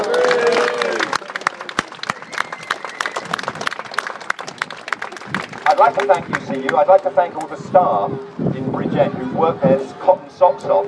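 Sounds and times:
people whooping and cheering: 0.0s - 3.6s
crowd clapping at an outdoor rally: 0.0s - 7.5s
speech: 5.8s - 10.8s.

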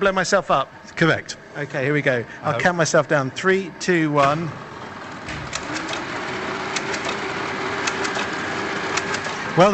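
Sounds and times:
speech: 0.0s - 4.7s, 9.6s - 9.7s
large machine with three blocks of cogs in rows cranking up: 0.0s - 9.7s
sharp mechanical clicks: 5.2s - 9.4s.

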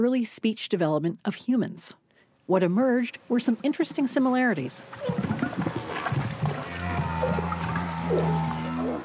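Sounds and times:
speech: 0.0s - 5.7s
humpback whale short grunting calls: 5.0s - 9.0s.

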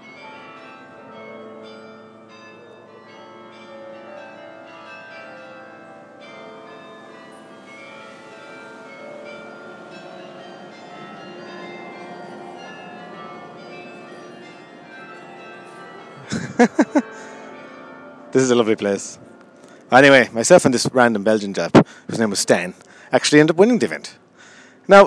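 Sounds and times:
church bells ringing in Bruges: 0.0s - 25.0s
laughter: 16.2s - 17.2s
speech: 16.6s - 16.8s, 18.3s - 19.3s, 19.9s - 24.2s, 24.9s - 25.0s.

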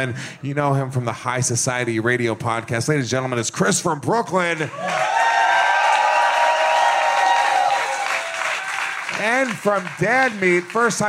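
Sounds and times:
speech: 0.0s - 5.2s, 9.2s - 11.0s
large audience clapping at a comedy festival show: 4.5s - 11.0s
audience whoops and shouts at a comedy festival show: 4.7s - 8.8s.

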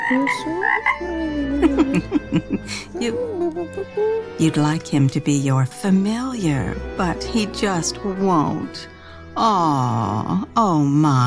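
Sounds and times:
small toad croaking: 0.0s - 2.1s
speech: 0.1s - 11.2s
laughter: 0.8s - 4.2s.

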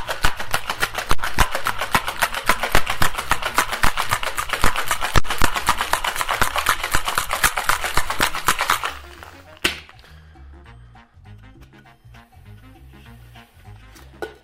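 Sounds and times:
cocktail shaker shaken hard with ice rattling: 0.0s - 9.9s.

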